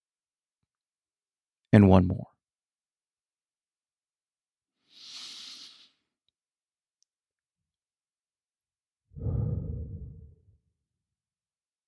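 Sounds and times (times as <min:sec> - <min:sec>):
speech: 0:01.7 - 0:02.3
person breathing slowly into a microphone: 0:04.9 - 0:06.1, 0:09.2 - 0:10.4.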